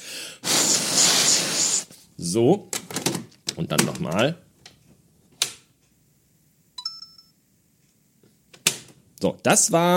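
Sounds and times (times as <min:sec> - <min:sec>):
puff of air blown into slot of a Nintendo game cartridge: 0:00.0 - 0:01.9
speech: 0:02.2 - 0:02.8, 0:03.6 - 0:04.4, 0:09.2 - 0:09.9.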